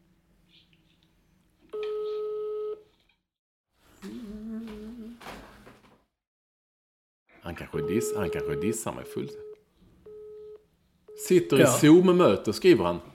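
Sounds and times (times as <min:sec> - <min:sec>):
ringback tone on an outgoing phone call: 0:01.8 - 0:02.9, 0:07.8 - 0:11.8
speech: 0:07.5 - 0:09.4, 0:11.3 - 0:13.1.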